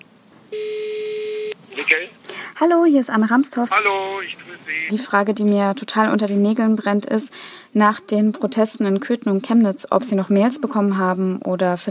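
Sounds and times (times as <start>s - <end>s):
speech: 0.5s - 0.8s, 1.8s - 11.8s
telephone ringing tone as a call is placed: 0.6s - 1.6s.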